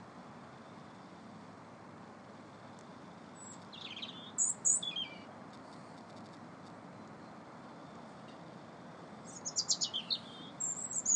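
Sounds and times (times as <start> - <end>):
constant low background hum: 0.0 - 11.1
birds singing in short high tinkling bursts of rapid notes: 3.3 - 5.3, 9.3 - 11.1.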